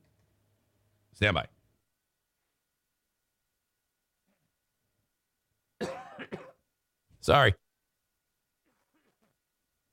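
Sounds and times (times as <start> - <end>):
speech: 1.2 - 1.6, 7.2 - 7.6
person coughing: 5.8 - 6.6.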